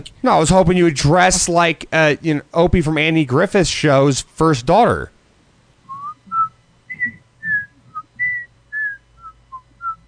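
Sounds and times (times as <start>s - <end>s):
speech: 0.0s - 5.1s
faint low hum: 0.0s - 10.0s
person attempting to whistle: 5.9s - 10.0s.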